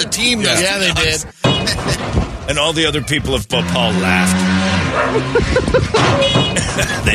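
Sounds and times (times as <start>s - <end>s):
speech: 0.1s - 7.1s
laughter: 0.4s - 2.2s, 5.0s - 7.1s
street dog barking: 4.9s - 5.3s.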